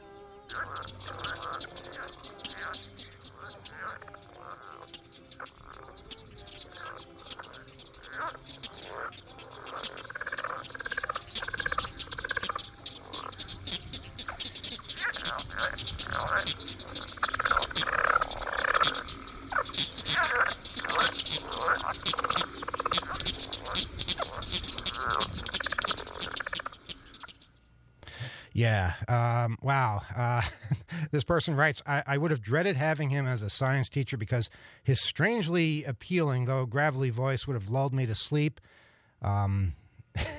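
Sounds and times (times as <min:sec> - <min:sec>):
leopard frog mating call: 0:00.0 - 0:27.8
steady hum: 0:00.0 - 0:35.4
speech: 0:29.4 - 0:38.6, 0:39.2 - 0:39.8.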